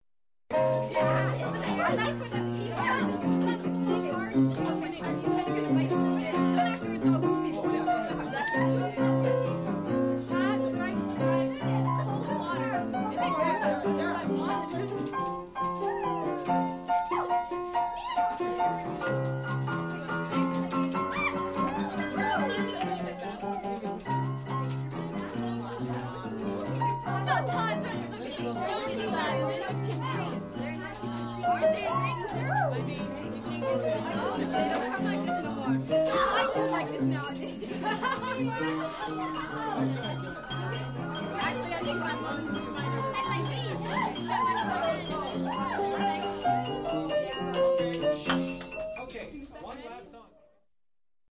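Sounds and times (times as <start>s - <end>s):
piano playing at a party: 0.5s - 49.2s
people's voices at a party: 0.5s - 50.5s
laughter: 19.7s - 47.2s.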